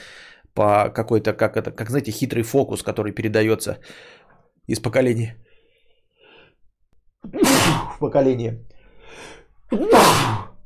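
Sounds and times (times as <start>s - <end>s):
speech: 0.6s - 5.4s, 7.2s - 10.4s
sneeze: 7.3s - 8.0s, 9.7s - 10.6s.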